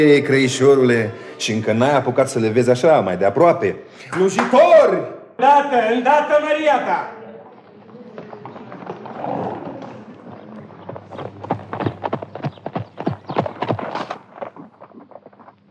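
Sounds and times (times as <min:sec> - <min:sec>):
speech: 0:00.0 - 0:07.2
tall horse hooves clip-clopping on a hard surface: 0:07.5 - 0:15.7.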